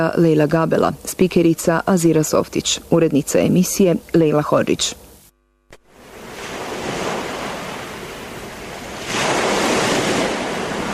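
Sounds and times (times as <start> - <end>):
speech: 0.0 - 5.1
ocean surf in a broad hissing wash: 5.9 - 10.9.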